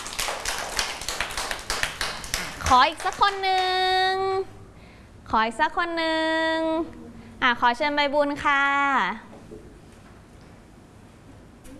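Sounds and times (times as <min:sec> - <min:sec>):
children in a classroom clapping for a classmate: 0:00.0 - 0:03.9
speech: 0:02.7 - 0:04.6, 0:05.3 - 0:09.6.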